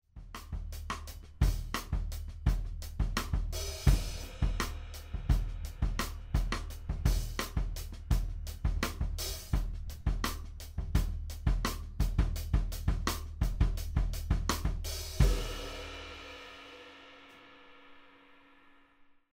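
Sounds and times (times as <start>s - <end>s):
big band groove: 0.2s - 16.8s
drum rimclick: 0.4s - 15.5s.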